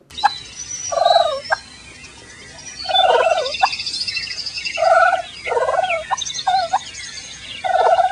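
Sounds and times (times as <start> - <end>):
faint bird chirps: 0.1 - 8.1
turkey gobbling in rattling bursts: 0.2 - 1.7, 2.8 - 7.0, 7.6 - 8.1.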